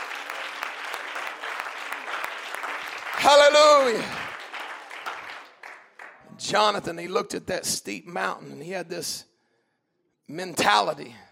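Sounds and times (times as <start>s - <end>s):
audience clapping during a church service: 0.0s - 6.8s
speech: 3.2s - 4.2s, 6.5s - 9.3s, 10.3s - 11.2s.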